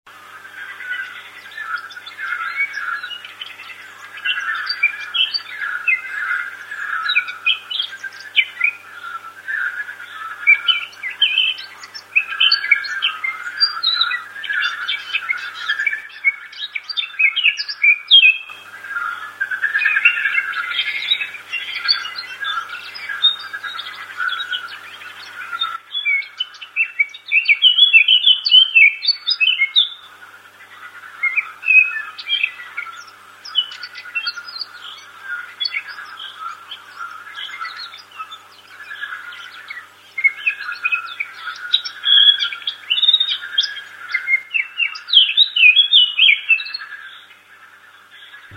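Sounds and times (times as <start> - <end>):
frogs croaking: 0.1 - 48.5
blackcap singing: 0.6 - 30.1, 30.7 - 47.4.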